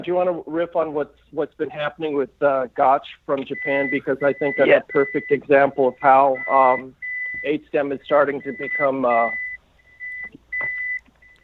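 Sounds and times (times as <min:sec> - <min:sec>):
speech: 0:00.0 - 0:09.4
vehicle reversing alarm beeping while backing up: 0:03.5 - 0:11.4.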